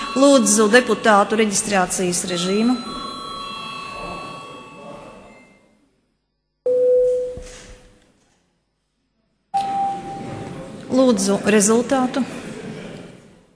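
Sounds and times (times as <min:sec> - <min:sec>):
chamber bell ringing to call deputies: 0:00.0 - 0:05.7, 0:09.6 - 0:10.6
speech: 0:00.2 - 0:03.0, 0:11.0 - 0:12.5.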